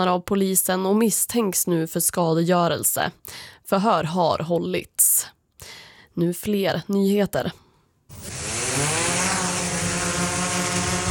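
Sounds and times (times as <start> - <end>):
speech: 0.0 - 8.9
drone carrying lab samples flying by with buzzing propellers: 8.1 - 11.1.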